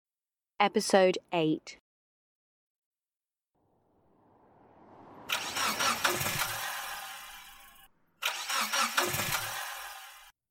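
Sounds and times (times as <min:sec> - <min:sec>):
speech: 0:00.6 - 0:01.8
car engine cranking and sputtering: 0:04.1 - 0:10.3.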